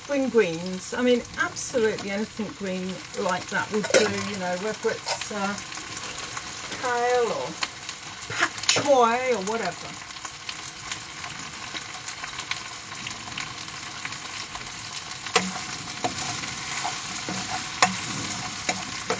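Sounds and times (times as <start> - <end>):
onion, spring onion, red pepper, ginger, mushrooms and broad beans frying in a pan: 0.0 - 19.1
speech: 0.1 - 5.8, 6.8 - 7.7, 8.7 - 10.1
utensil scraping and clinking while stirring food in a pan: 3.8 - 4.4, 15.3 - 19.1.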